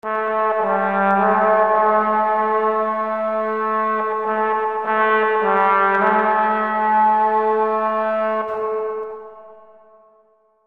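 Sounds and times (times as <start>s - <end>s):
deep horn fanfare: 0.0s - 10.2s.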